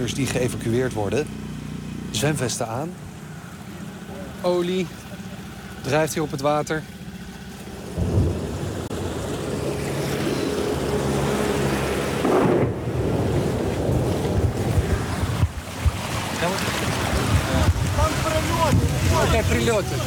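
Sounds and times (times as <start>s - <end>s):
speech: 0.0s - 1.5s, 2.1s - 3.0s, 4.4s - 5.0s, 5.8s - 6.9s, 19.7s - 20.0s
small boat engines rumbling on floodwater: 0.0s - 20.0s
rushing wind-like noise: 8.0s - 20.0s.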